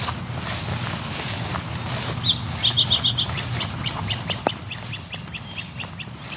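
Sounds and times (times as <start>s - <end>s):
steady outdoor hum: 0.0s - 6.3s
great crested flycatcher sharp rising whip calls: 2.1s - 6.3s.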